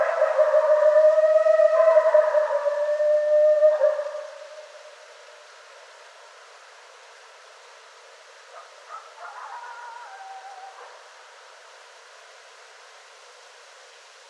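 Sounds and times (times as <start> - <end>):
several coyotes howling together: 0.0 - 4.7, 8.9 - 11.1.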